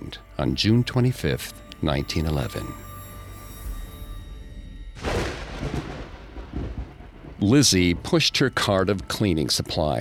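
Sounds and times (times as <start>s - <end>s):
speech: 0.1s - 2.9s, 7.4s - 9.9s
low steady rumble: 5.0s - 8.7s
rolling crackling thunder in a thunderstorm: 5.0s - 8.9s.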